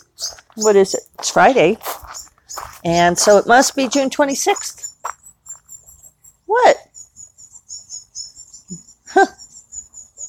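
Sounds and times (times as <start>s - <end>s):
wren chirping near baby birds outdoors in the morning: 0.0s - 10.2s
speech: 0.2s - 5.2s.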